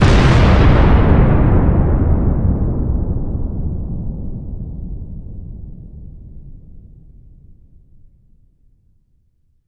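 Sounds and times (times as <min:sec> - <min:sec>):
strong rolling explosion: 0:00.0 - 0:06.5.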